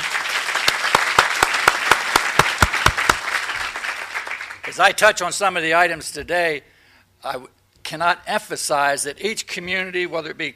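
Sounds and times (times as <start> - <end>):
sharp claps in a quick rhythm: 0.0 - 4.7
room full of people applauding: 0.0 - 4.8
speech: 4.7 - 10.5.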